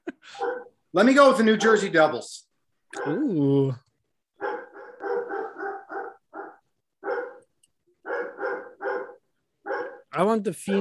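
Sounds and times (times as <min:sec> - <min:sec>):
dog barking: 0:00.3 - 0:00.8, 0:01.5 - 0:02.2, 0:03.0 - 0:03.3, 0:04.4 - 0:10.8
speech: 0:00.9 - 0:03.8, 0:10.2 - 0:10.8.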